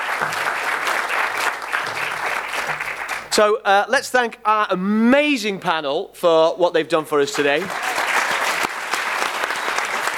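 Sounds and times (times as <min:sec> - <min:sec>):
room full of people clapping: 0:00.0 - 0:03.4, 0:07.5 - 0:10.1
speech: 0:03.4 - 0:07.9.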